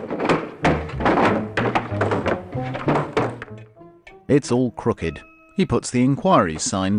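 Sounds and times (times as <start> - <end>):
hollow wooden thunks and knocks of a large flat panel set down on a desk: 0.0 - 3.8
heavy clatters of a desktop put back onto a desk: 0.0 - 4.2
speech: 4.3 - 6.9.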